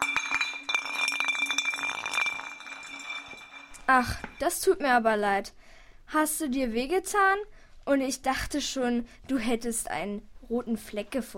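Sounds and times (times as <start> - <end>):
glass bottle clinking on the floor as someone slips on it: 0.0 - 4.6
speech: 3.9 - 11.3.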